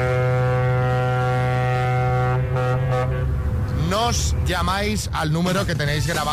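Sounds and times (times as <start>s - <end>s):
loud deep ship horn blast: 0.0s - 3.7s
speech: 4.1s - 6.3s.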